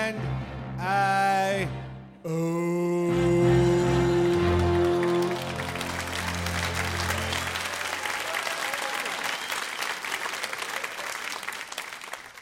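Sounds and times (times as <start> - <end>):
speech: 0.1 - 2.8
large crowd applauding: 4.1 - 12.4.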